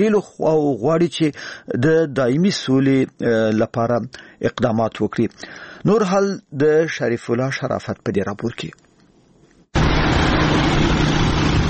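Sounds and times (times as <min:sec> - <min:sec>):
speech: 0:00.0 - 0:08.8
engines of motorcycles and cars of armed fighters roaring: 0:09.8 - 0:11.6.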